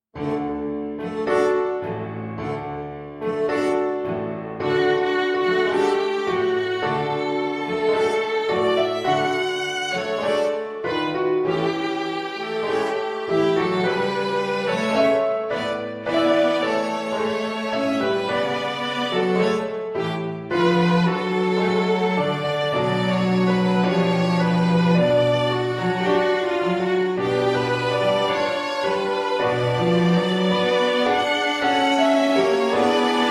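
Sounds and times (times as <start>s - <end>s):
computer sample of quartet playing tango in D: 0.0s - 33.3s.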